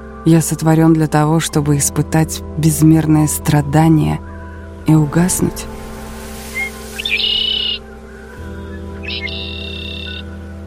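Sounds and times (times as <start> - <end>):
low steady droning background: 0.0 - 10.6
speech: 0.2 - 4.3, 4.9 - 5.8
hoarse old bird screeching: 6.5 - 7.8, 9.0 - 10.2.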